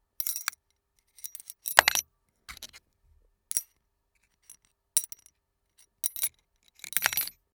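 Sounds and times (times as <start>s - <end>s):
tool box: 1.2s - 2.8s, 6.1s - 7.4s.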